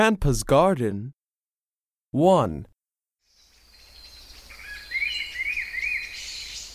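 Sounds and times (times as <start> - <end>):
speech: 0.0 - 1.2, 2.1 - 2.7
bird chirping: 3.3 - 6.7.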